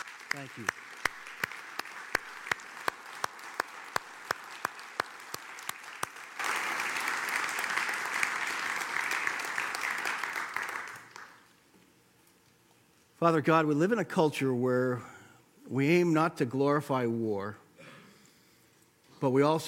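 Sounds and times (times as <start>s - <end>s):
crowd applauding veterans: 0.0s - 11.5s
speech: 0.3s - 0.9s, 13.2s - 15.1s, 15.7s - 17.6s, 19.2s - 19.6s.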